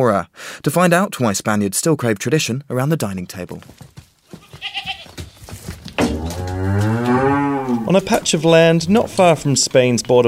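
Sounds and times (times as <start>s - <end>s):
speech: 0.0s - 4.0s, 7.9s - 10.2s
outdoor rustling: 3.1s - 10.2s
cow mooing on grazing land near a stone monastery in Zamora, Spain: 6.0s - 8.2s.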